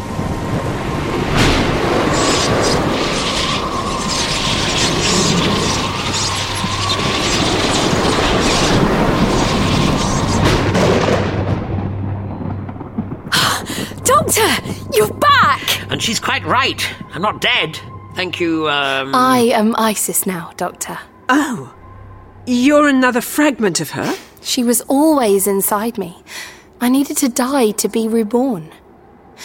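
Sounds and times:
deep rumbling thunder: 0:00.0 - 0:21.2
dense hiss of wind and rain: 0:00.0 - 0:29.4
speech: 0:16.4 - 0:21.8, 0:22.4 - 0:28.8.

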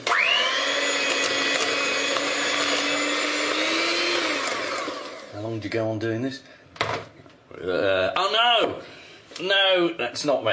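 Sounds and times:
electric hand whisk mixing cake batter: 0:00.0 - 0:05.4
speech: 0:05.6 - 0:06.6, 0:07.6 - 0:10.5.

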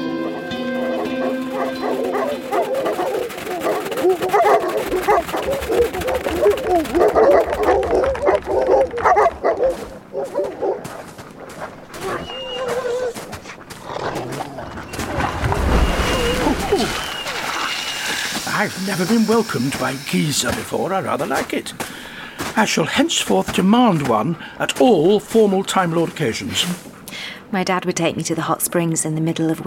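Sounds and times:
several wolves yipping, whimpering and barking: 0:00.1 - 0:18.5
speech: 0:19.0 - 0:21.9, 0:22.6 - 0:26.9, 0:27.5 - 0:29.6.

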